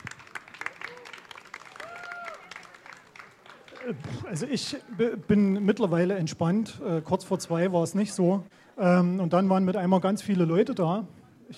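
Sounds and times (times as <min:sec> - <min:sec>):
audience applauding with dense steady clapping: 0:00.0 - 0:05.2
speech: 0:03.8 - 0:11.5.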